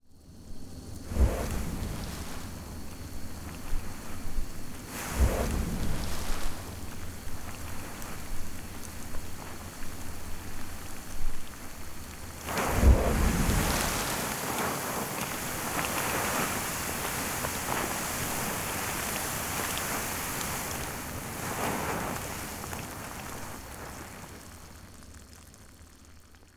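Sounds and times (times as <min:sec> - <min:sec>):
geyser burst: 0:01.1 - 0:24.4.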